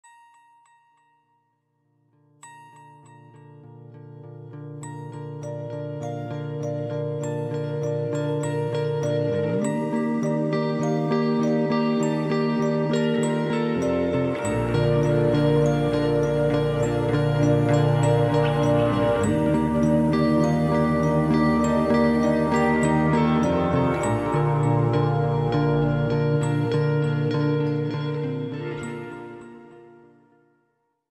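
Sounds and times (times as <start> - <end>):
morning alarm melody: 6.0 - 29.9.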